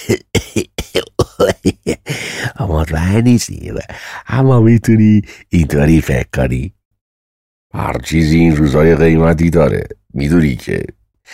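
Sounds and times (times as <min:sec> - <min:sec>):
man coughing: 0:00.0 - 0:02.6
speech: 0:03.1 - 0:06.8, 0:07.7 - 0:11.3.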